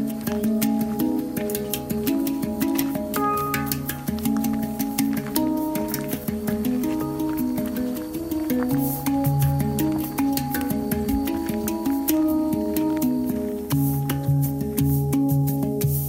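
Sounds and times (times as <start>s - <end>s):
hang steel drum shaped like a flying saucer being played: 0.0s - 16.0s.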